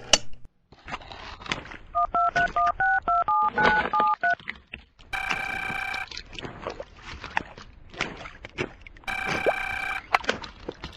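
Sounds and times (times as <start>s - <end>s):
telephone keypad tones as a number is dialed: 2.0s - 4.4s, 5.2s - 6.1s, 9.1s - 10.1s
loud sustained electronic ringing or alert bursts: 5.2s - 6.1s, 9.1s - 10.1s.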